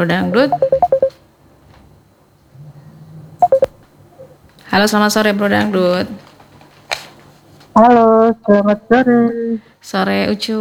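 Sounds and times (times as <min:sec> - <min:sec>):
speech: 0:00.0 - 0:00.7, 0:04.7 - 0:06.2, 0:07.8 - 0:10.5
telephone dialing tones: 0:00.5 - 0:01.1, 0:03.4 - 0:03.7.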